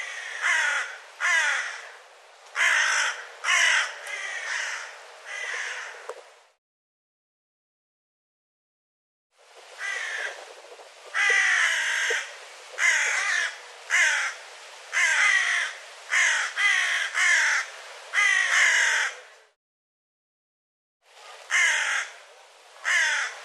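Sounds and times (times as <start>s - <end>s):
bird giving harsh raspy calls with rich overtones: 0.0s - 2.0s, 2.6s - 6.0s, 9.8s - 10.4s, 11.1s - 19.2s, 21.5s - 22.1s, 22.8s - 23.4s.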